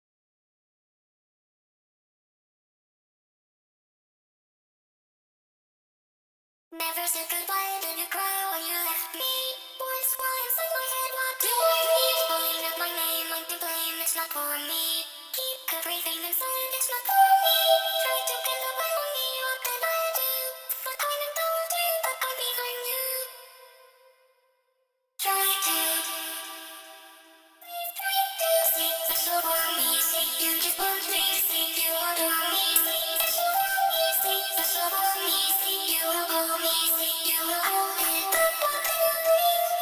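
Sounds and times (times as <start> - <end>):
vocal harmony: 6.9 - 23.5, 25.2 - 27.0, 27.8 - 39.8.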